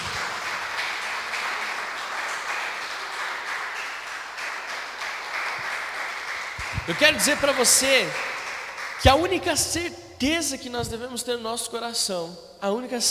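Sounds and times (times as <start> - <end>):
large crowd applauding: 0.0 - 9.6
speech: 6.9 - 8.3, 9.0 - 13.0.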